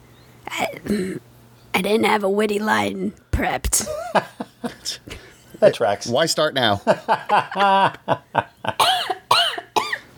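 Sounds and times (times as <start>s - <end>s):
speech: 0.8s - 8.8s
laughter: 3.9s - 5.2s, 6.8s - 8.8s
person giving harsh throaty coughs: 8.8s - 10.1s.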